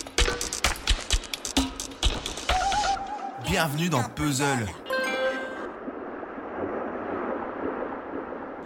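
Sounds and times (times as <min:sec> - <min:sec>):
surf rolling and breaking on shore: 0:00.3 - 0:08.6
speech: 0:03.5 - 0:04.8
brief bright tone: 0:04.9 - 0:05.7.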